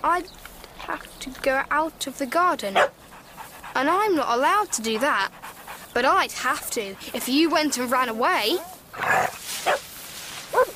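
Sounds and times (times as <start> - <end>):
speech: 0.0 - 9.8
dog barking by a garden hedge: 2.8 - 3.0, 9.6 - 9.8, 10.5 - 10.7.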